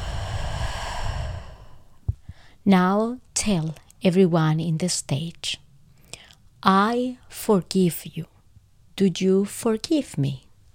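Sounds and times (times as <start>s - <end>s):
deep slow breath in and out during a calming sleep exercise: 0.0s - 2.6s
speech: 2.6s - 5.6s, 6.6s - 8.3s, 9.0s - 10.4s.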